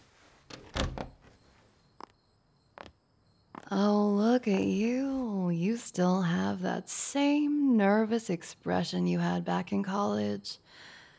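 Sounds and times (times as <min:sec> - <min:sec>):
door swinging shut with a solid thud and rattle: 0:00.5 - 0:01.4
speech: 0:03.7 - 0:10.9.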